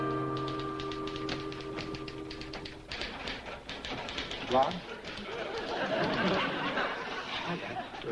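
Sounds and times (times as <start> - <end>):
typewriter keys clacking as a young woman types a sociology project: 0.1 - 6.3
people laughing: 4.5 - 8.1.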